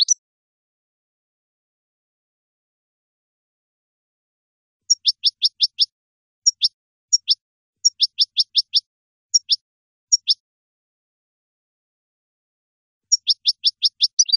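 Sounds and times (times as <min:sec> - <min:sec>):
European goldfinch twittering song: 0:04.9 - 0:10.4, 0:13.1 - 0:14.3.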